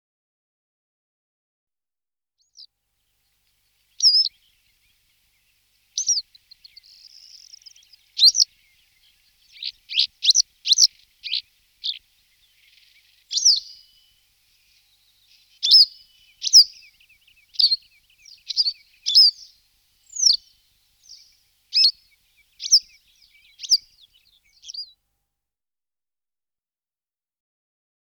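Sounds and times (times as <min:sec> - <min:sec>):
yellow wagtail singing: 0:03.9 - 0:24.9.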